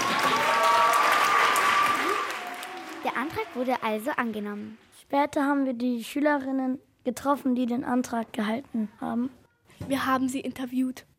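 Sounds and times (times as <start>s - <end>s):
children applauding in a room after a vote: 0.0s - 4.8s
speech: 3.3s - 11.1s.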